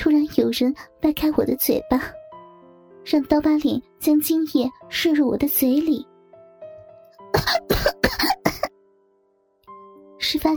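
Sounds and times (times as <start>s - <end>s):
speech: 0.5s - 2.2s, 3.0s - 6.1s, 7.4s - 8.3s, 10.2s - 10.5s
person coughing harshly: 7.4s - 8.7s.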